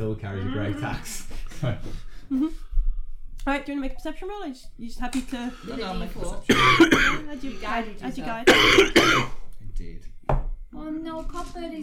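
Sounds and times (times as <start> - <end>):
speech: 0.0 - 2.7, 3.4 - 11.8
person coughing: 6.5 - 7.3, 8.4 - 9.4.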